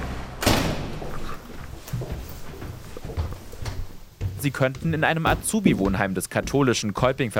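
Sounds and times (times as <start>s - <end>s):
door opening with a sharp knock or clack: 0.0s - 1.2s
shuffling movements: 0.9s - 7.3s
speech: 4.4s - 7.3s.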